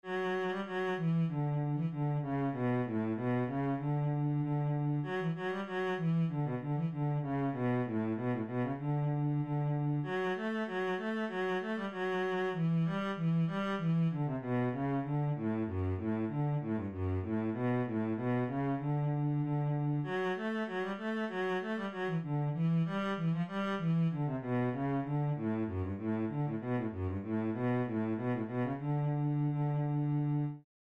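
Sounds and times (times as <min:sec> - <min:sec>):
cello: 0:00.0 - 0:30.6.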